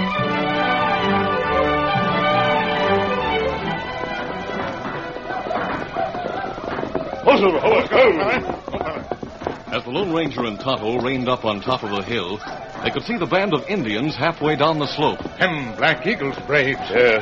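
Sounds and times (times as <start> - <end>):
sustained tonal music-like sound: 0.0 - 6.8
galloping horse hoofbeats: 2.0 - 17.2
speech: 7.4 - 8.5, 9.7 - 17.2.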